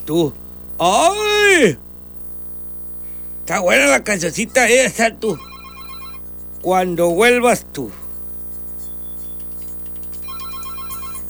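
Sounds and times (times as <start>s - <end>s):
speech: 0.0s - 1.8s, 3.5s - 5.5s, 6.6s - 8.0s
humming tonal background: 0.0s - 11.2s
telephone ringtone signalling an incoming call: 5.3s - 6.3s, 10.2s - 11.2s.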